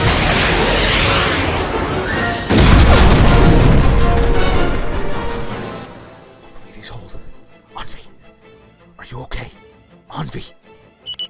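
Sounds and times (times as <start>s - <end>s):
rockets firing: 0.0s - 5.4s
rocket explosion: 0.0s - 5.8s.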